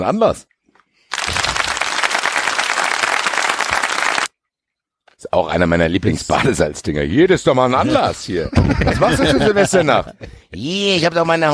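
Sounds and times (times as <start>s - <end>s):
speech: 0.0s - 0.5s, 5.2s - 11.5s
crowd applause: 1.1s - 4.3s
laughter: 7.8s - 10.5s.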